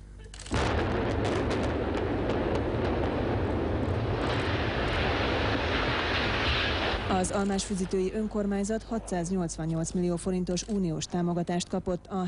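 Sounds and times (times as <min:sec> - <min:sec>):
demolition explosion of old factory halls: 0:00.5 - 0:08.4
roaring rumble of collapsing structures: 0:00.5 - 0:09.0
speech: 0:07.1 - 0:12.2.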